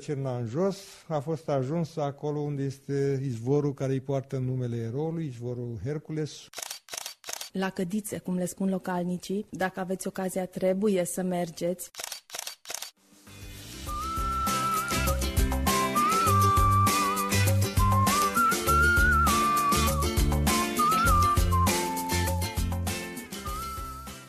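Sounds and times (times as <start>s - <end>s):
speech: 0.0s - 6.7s, 7.6s - 12.0s
steady musical backing: 13.2s - 24.2s
person whistling a lively tune: 13.9s - 22.7s, 23.4s - 24.2s.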